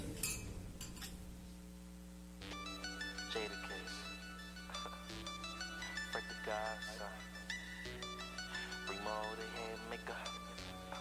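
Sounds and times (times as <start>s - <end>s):
glasses clinking in a toast at a celebration: 0.0s - 1.2s
low steady hum: 0.0s - 10.9s
speech: 3.3s - 3.8s, 6.5s - 7.3s, 9.0s - 10.4s.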